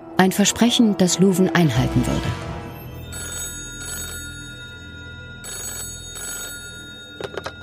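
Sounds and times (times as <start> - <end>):
speech: 0.2 - 2.6
telephone ringing with trilling bells: 2.8 - 7.6.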